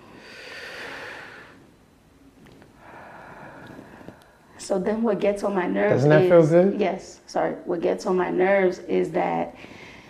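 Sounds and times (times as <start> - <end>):
deep breathing: 0.0 - 1.7, 2.7 - 4.6, 9.6 - 10.0
speech: 4.7 - 9.8.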